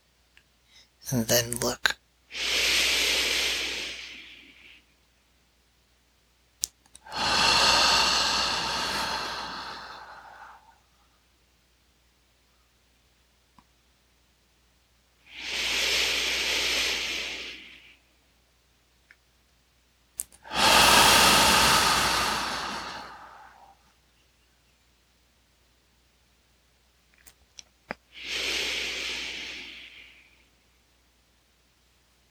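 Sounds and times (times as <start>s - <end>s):
speech: 1.1s - 1.9s
slow deep breathing with forceful exhales in a breathing exercise: 2.3s - 4.9s, 7.0s - 10.9s, 15.3s - 18.1s, 20.4s - 23.9s, 28.1s - 30.5s.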